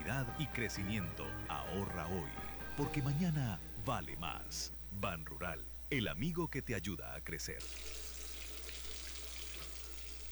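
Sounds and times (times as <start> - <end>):
speech: 0.1 - 8.0
water running from a tap: 7.6 - 10.3.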